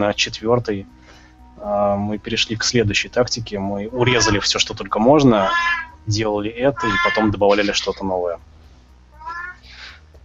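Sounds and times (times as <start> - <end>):
speech: 0.0 - 1.0, 1.6 - 8.5
low steady hum: 0.0 - 10.2
breathy hissy trailing sound: 0.8 - 2.0, 9.6 - 10.1
cat meowing loudly: 4.0 - 4.5, 5.3 - 6.0, 6.7 - 8.0, 9.2 - 9.6.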